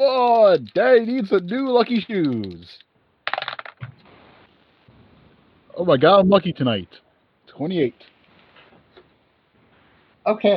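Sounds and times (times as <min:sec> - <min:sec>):
speech: 0:00.0 - 0:02.9, 0:05.8 - 0:07.0, 0:07.6 - 0:08.1, 0:10.3 - 0:10.5
dice rolling in a tabletop game: 0:00.2 - 0:04.0.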